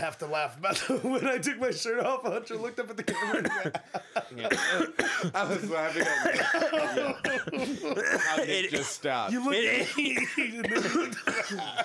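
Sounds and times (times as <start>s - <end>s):
speech: 0.0s - 11.8s
laughter: 0.7s - 11.8s
person coughing: 3.1s - 3.8s, 4.5s - 9.0s, 9.7s - 11.8s.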